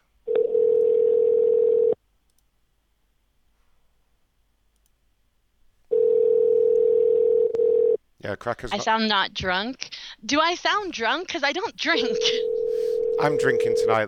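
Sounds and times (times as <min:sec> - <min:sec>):
telephone dial tone while calling someone back: 0:00.3 - 0:02.0, 0:05.9 - 0:08.0, 0:12.2 - 0:13.8
speech: 0:08.2 - 0:12.6, 0:13.2 - 0:14.0.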